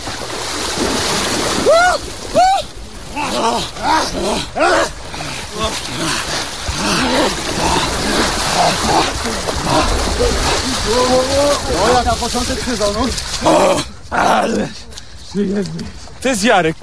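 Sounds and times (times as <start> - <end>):
people wading and splashing into cold lake water: 0.0 - 14.6
people shouting and yelping excitedly: 1.6 - 12.1
speech: 3.2 - 5.0, 8.6 - 16.8.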